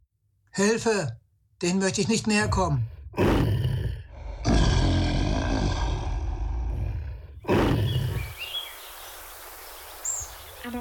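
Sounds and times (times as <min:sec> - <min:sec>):
speech: 0:00.6 - 0:03.4
lions roaring: 0:02.6 - 0:08.3
faint bird chirps: 0:07.8 - 0:10.7.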